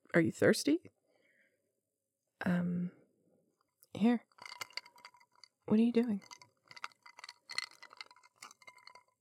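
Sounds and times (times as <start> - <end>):
speech: 0.1 - 0.9, 2.4 - 3.0, 4.0 - 4.6, 5.7 - 6.4
ice cubes clinking against the inside of a glass: 4.3 - 9.2.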